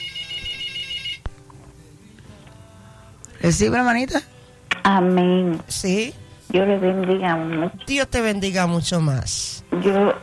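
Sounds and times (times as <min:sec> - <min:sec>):
telephone ringtone for an incoming call: 0:00.0 - 0:01.3
speech: 0:03.4 - 0:04.3, 0:04.9 - 0:10.2.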